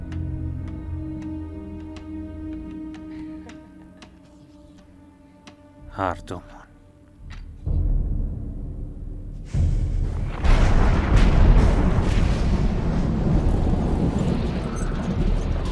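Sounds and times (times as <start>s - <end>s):
speech: 6.0s - 6.6s
deep rumbling of an approaching storm: 7.7s - 15.7s
loud sustained roar of gusting wind: 9.6s - 15.7s.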